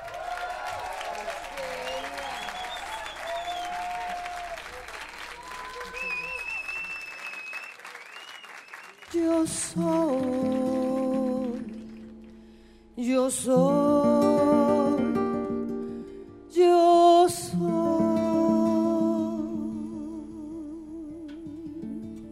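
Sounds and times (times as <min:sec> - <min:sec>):
audience applauding to welcome a guest singer: 0:00.0 - 0:12.5
music: 0:09.7 - 0:22.3.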